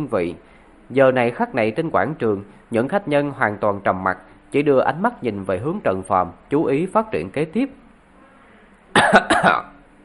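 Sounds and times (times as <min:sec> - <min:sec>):
speech: 0:00.0 - 0:07.8, 0:09.0 - 0:09.7
elderly man giving a light dry cough: 0:08.9 - 0:09.8.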